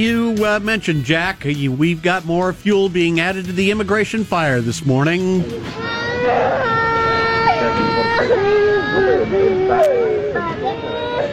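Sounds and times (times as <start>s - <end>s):
speech: 0.0s - 6.8s, 7.8s - 11.3s
murmuring voices: 5.2s - 11.3s
children at a border facility crying out for their parents: 5.4s - 11.3s
laughter: 5.4s - 11.3s.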